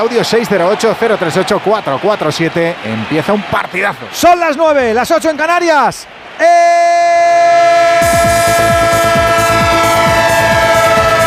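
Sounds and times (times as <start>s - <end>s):
speech: 0.0s - 7.4s
train horn holding a loud steady chord: 7.5s - 11.2s.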